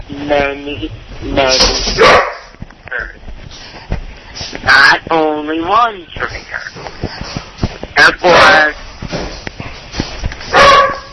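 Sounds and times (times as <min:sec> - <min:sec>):
speech: 0:00.1 - 0:02.3, 0:04.7 - 0:06.6
dog barking: 0:02.0 - 0:02.5, 0:10.5 - 0:11.1.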